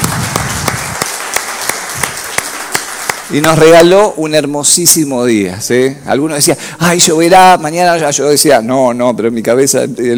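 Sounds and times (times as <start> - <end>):
sharp individual claps: 0.0 - 3.9
church congregation applauding during a Sunday service: 0.0 - 4.1
speech: 3.3 - 10.1.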